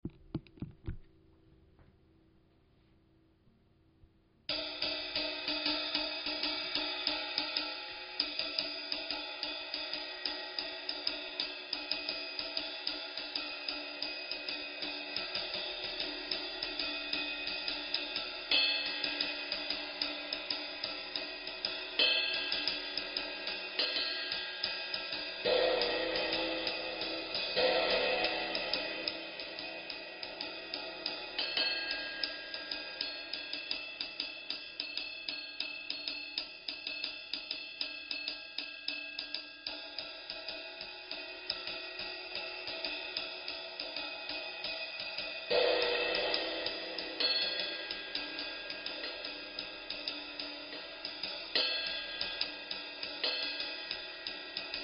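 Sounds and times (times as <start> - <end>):
20-inch dark ride cymbal: 4.5 - 54.8.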